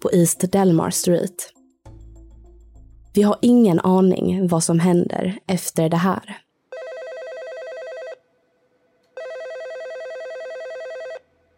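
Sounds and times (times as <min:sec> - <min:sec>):
speech: 0:00.0 - 0:01.6, 0:03.2 - 0:06.4
telephone ringing with long electronic warble: 0:06.7 - 0:08.2, 0:09.2 - 0:11.3.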